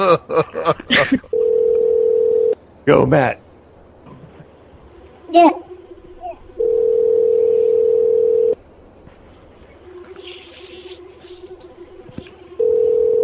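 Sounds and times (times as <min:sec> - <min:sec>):
speech: 0:00.1 - 0:01.3, 0:02.9 - 0:03.4, 0:05.3 - 0:05.6
electronic ringback tone through a phone handset: 0:01.3 - 0:02.6, 0:06.6 - 0:08.6, 0:12.6 - 0:13.2.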